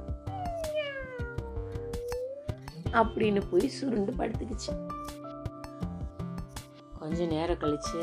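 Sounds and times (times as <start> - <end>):
kitten meowing: 0.2 - 2.6
speech: 2.9 - 5.1, 7.0 - 8.0.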